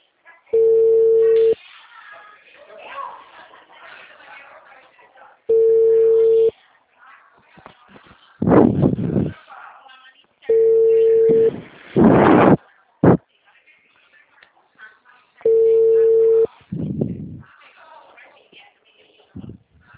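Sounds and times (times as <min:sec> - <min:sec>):
voices: 0:00.4 - 0:19.9
telephone ringback tone on an outgoing mobile call: 0:00.6 - 0:01.6, 0:05.5 - 0:06.5, 0:10.5 - 0:11.6, 0:15.4 - 0:16.5.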